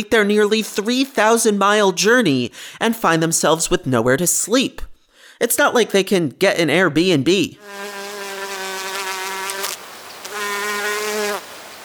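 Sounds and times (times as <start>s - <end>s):
speech: 0.0s - 8.0s
loud bee buzzing sound effect: 7.6s - 11.8s.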